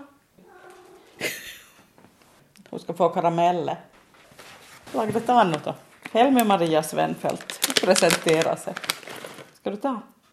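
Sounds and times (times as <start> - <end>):
cat giving a small thin meow: 0.4 - 1.3
speech: 2.7 - 3.9, 4.9 - 8.9, 9.7 - 10.1.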